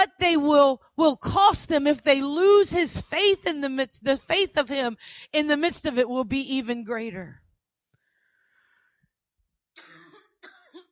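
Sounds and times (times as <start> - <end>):
speech: 0.0 - 7.4
person coughing from an irritated throat: 9.8 - 10.8.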